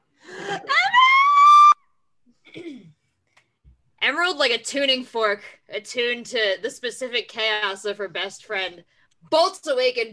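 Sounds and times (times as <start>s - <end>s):
person shrieking hysterically from downstairs: 0.3s - 1.8s
faint descending wail: 0.5s - 1.8s
speech: 4.2s - 10.1s.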